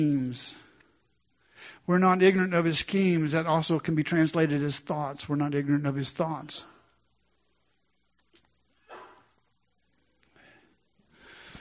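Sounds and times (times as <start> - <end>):
speech: 0.0 - 0.6, 1.8 - 6.7
person sneezing: 8.8 - 9.4.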